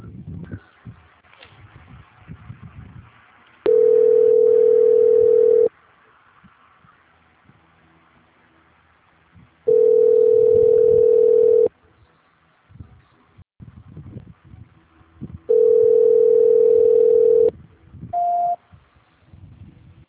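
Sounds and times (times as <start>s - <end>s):
telephone line tones during call transfer: 3.7s - 5.7s, 9.7s - 11.7s, 15.5s - 17.5s, 18.2s - 18.6s
brief higher beep: 18.2s - 18.6s.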